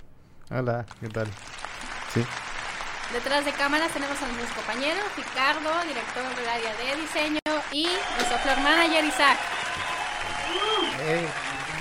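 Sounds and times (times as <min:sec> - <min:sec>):
speech: 0:00.5 - 0:02.5, 0:03.1 - 0:09.9, 0:10.6 - 0:11.5
crowd applauding: 0:00.9 - 0:11.8.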